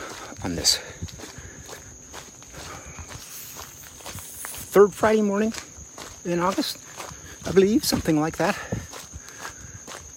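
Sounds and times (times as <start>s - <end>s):
footsteps crunching along a hiking trail on an August morning walk: 0.0s - 10.1s
speech: 0.4s - 1.3s, 4.7s - 6.8s, 7.4s - 8.8s
thin constant high-pitched whine: 3.0s - 5.6s.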